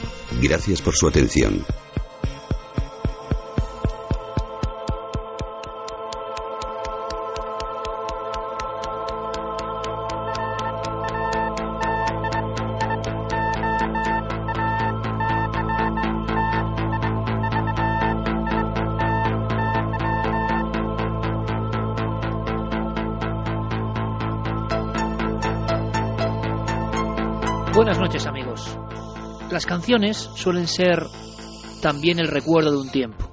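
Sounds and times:
vintage 1970s electronic synthesizer music: 0.0 - 33.3
speech: 0.3 - 1.8, 29.7 - 31.2, 31.8 - 33.2.

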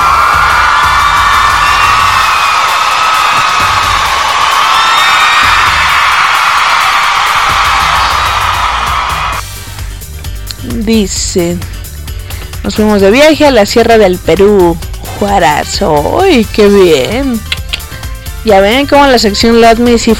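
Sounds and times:
crowd cheering and whooping in an ovation: 0.0 - 9.4
speech: 10.9 - 11.7, 12.6 - 17.5, 18.4 - 20.1.

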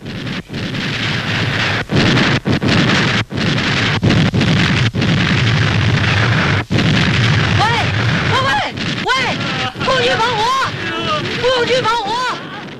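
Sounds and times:
artillery shelling explosions on a hilltop position: 0.0 - 12.7
people shouting: 7.6 - 12.7.

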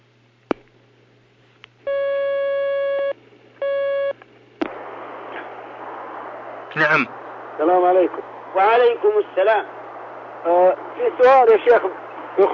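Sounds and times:
two steady electronic telephone line tones: 1.9 - 4.2
speech: 6.8 - 9.8, 10.4 - 12.5.

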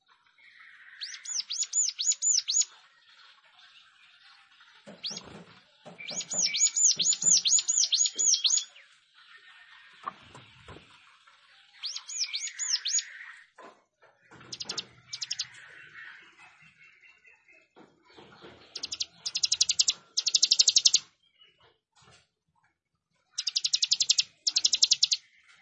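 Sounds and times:
plain prinia song: 0.5 - 2.8, 6.0 - 10.1, 11.7 - 13.5, 14.4 - 17.4, 18.7 - 21.2, 23.4 - 25.5.

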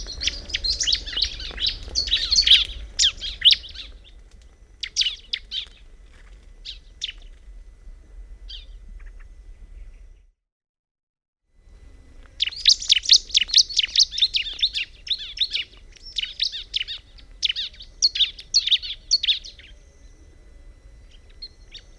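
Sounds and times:
bar-winged prinia song with sharp chirping notes: 0.0 - 4.2, 4.8 - 5.9, 6.6 - 7.4, 8.5 - 10.2, 12.3 - 20.2, 21.0 - 21.9.

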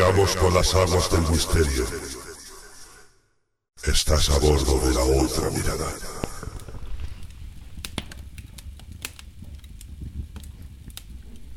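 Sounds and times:
speech: 0.1 - 2.2, 3.8 - 6.2
fire crackling in a fireplace: 5.2 - 11.5.

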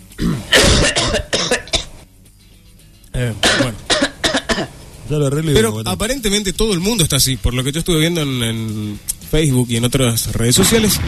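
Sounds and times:
person coughing outside: 0.2 - 2.0, 3.4 - 4.8
speech: 5.1 - 11.0.

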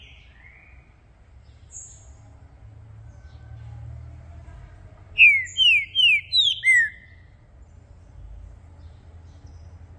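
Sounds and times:
low background hum: 0.0 - 9.9
Green-winged saltator song: 5.2 - 7.2.

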